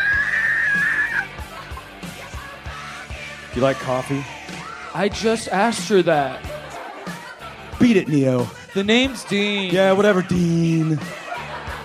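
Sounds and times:
women screaming in anguish echoing down a hallway: 0.0 - 1.3
laughter: 0.7 - 2.4, 5.7 - 11.8
speech: 3.6 - 4.4, 5.0 - 6.5, 7.8 - 11.2.

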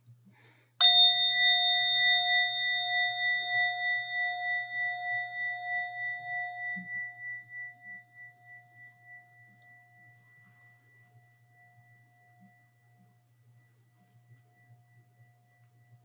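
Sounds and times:
mindfulness bell struck and ringing with a clear pure tone: 0.8 - 10.5.

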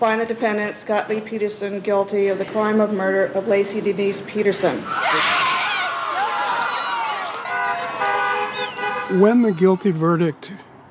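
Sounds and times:
speech: 0.0 - 5.5, 9.1 - 10.7
large outdoor crowd cheering and shouting outside a courthouse: 4.9 - 10.3
car horns honking: 7.4 - 10.2
whistles: 8.4 - 9.6.

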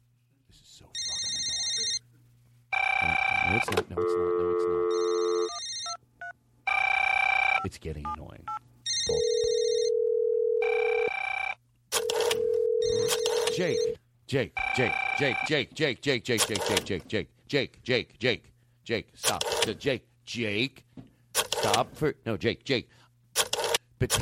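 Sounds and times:
British telephone ringing tone: 1.0 - 2.0, 2.7 - 6.0, 6.7 - 7.6, 8.8 - 14.0
speech: 3.5 - 4.6, 7.7 - 9.4, 13.6 - 20.8, 21.6 - 23.0, 24.0 - 24.2.

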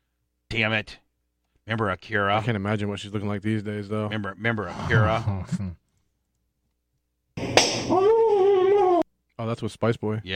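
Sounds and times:
low noise: 0.0 - 10.3
speech: 0.5 - 1.0, 1.6 - 5.8, 9.4 - 10.3
slap to the face: 7.4 - 8.0.

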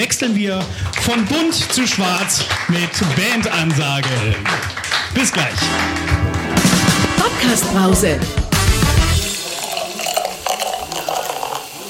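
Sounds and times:
speech: 0.0 - 8.4
coffee machine running: 9.2 - 11.8
liquid pouring into a cup: 9.2 - 11.8.

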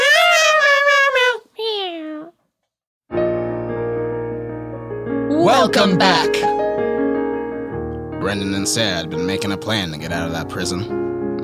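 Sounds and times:
voice imitating a cat meowing: 0.0 - 2.4
music: 3.1 - 11.4
speech: 5.6 - 6.5, 8.3 - 11.1.

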